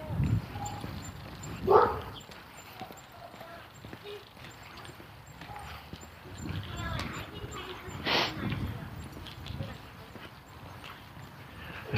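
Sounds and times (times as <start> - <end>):
footsteps on an outdoor street: 0.0 - 11.9
large wolfhound barking on the sidewalk: 1.6 - 2.2, 5.4 - 5.9
murmuring voices on a street: 2.6 - 11.9.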